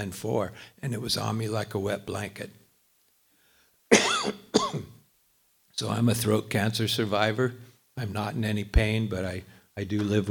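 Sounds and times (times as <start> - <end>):
speech: 0.0 - 2.6, 5.8 - 10.3
person with a chronically sore throat after throat cancer coughing: 3.9 - 5.0.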